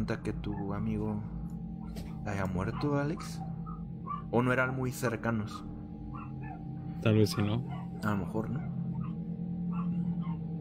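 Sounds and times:
speech: 0.1 - 3.5, 4.3 - 5.7, 7.0 - 8.7
agitated dogs whimpering and yipping: 1.8 - 4.5, 6.0 - 10.6.

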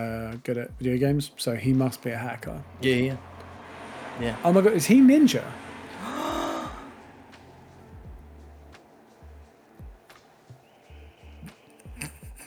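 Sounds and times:
speech: 0.0 - 3.3, 4.2 - 6.1
low thumps: 0.7 - 10.3
person gasping dramatically: 6.0 - 6.9.

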